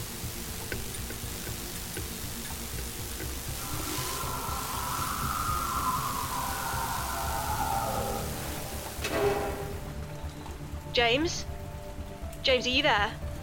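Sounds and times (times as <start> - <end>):
moving train rumbling with rhythmic clicking: 0.0 - 13.4
steady rain hiss: 0.0 - 13.4
long metallic squeal: 3.6 - 10.0
speech: 11.0 - 11.5, 12.4 - 13.2.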